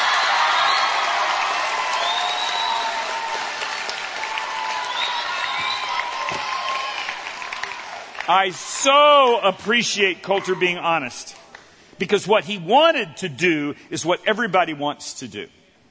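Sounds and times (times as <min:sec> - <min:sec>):
scattered cheers and whoops: 0:00.0 - 0:09.4
crowd applauding: 0:00.0 - 0:10.6
speech: 0:08.3 - 0:11.4, 0:12.0 - 0:15.6.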